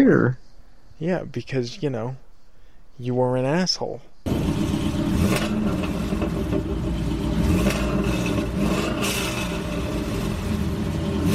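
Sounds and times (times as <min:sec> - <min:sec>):
speech: 0:00.0 - 0:00.4, 0:01.0 - 0:02.2, 0:03.0 - 0:04.6
bandit car engine revving as it drives by: 0:04.3 - 0:11.3.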